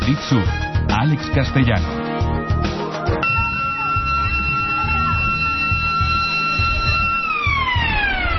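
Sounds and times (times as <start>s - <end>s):
speech: 0.1s - 2.0s
school siren sounding a sustained tone: 3.2s - 8.3s.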